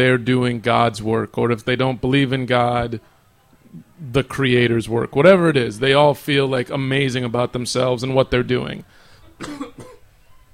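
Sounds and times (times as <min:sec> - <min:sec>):
speech: 0:00.0 - 0:03.1, 0:03.7 - 0:09.9
cough: 0:09.4 - 0:10.1.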